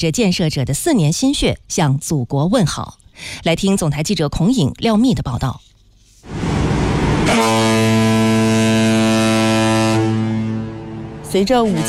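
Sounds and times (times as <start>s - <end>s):
speech: 0.0s - 6.4s, 11.3s - 11.8s
5000-tonne cargo ship horn blaring on the Pinglu Canal in Guangxi China: 6.3s - 11.8s.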